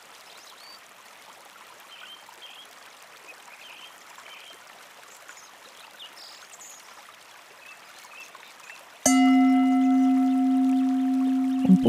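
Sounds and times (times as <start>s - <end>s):
gong struck and ringing: 9.1s - 11.8s.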